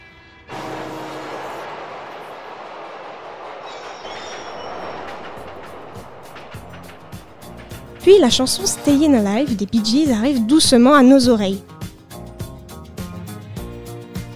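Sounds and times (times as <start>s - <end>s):
subway train rumbling: 0.0s - 12.9s
busy city traffic: 0.5s - 2.8s, 3.5s - 11.6s
rhythmic subway train wheel clatter: 3.7s - 9.8s
speech: 8.1s - 11.7s.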